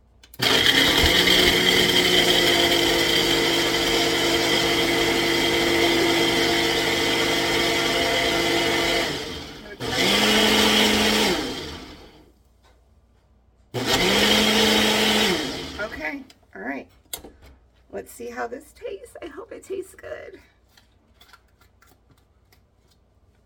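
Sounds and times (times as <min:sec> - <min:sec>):
blender mixing a coffee drink from a powdered mix: 0:00.4 - 0:12.2, 0:13.8 - 0:16.2.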